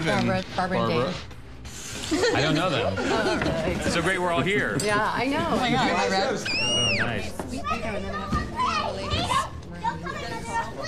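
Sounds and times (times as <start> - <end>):
speech: 0.0 - 1.4, 2.1 - 9.2
toddlers playing and chattering at an expensive dinner event in Manhattan: 5.9 - 10.8.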